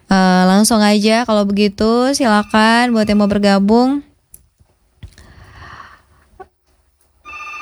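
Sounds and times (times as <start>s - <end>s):
speech: 0.5s - 4.1s
telephone ringing with an incoming call on a radio station's phone line: 0.6s - 4.1s, 7.2s - 7.6s.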